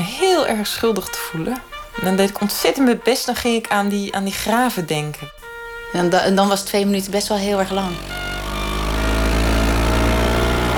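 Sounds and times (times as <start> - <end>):
speech: 0.4 - 8.2
small moped engine droning: 6.0 - 10.7.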